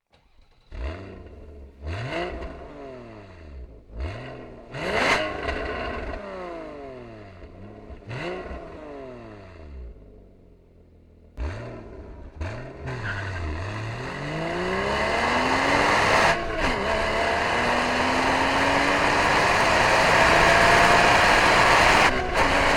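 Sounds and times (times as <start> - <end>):
Porsche Boxster S engine: 0.0 - 22.7.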